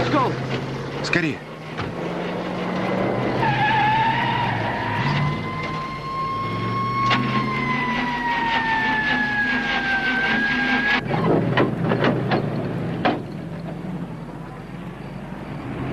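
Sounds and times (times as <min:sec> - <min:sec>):
car tires squealing: 0:00.0 - 0:13.0
car engine roaring and revving: 0:00.0 - 0:15.9
speech: 0:00.2 - 0:01.5.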